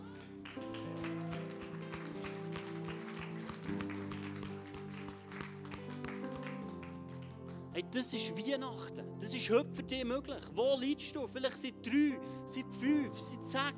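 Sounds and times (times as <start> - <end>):
audience applause: 0.0 - 7.8
speech: 7.8 - 13.7.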